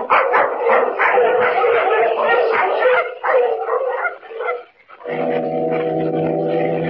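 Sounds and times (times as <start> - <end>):
pack of sled dogs barking and yipping: 0.0 - 6.8
dog horn droning: 5.1 - 6.8.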